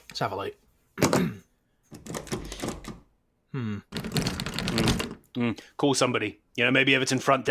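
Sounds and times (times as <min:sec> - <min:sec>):
speech: 0:00.2 - 0:02.2, 0:03.6 - 0:04.0, 0:04.7 - 0:07.4
stuck door lock rattling and clunking as it is jiggled: 0:02.0 - 0:03.0, 0:03.9 - 0:05.2.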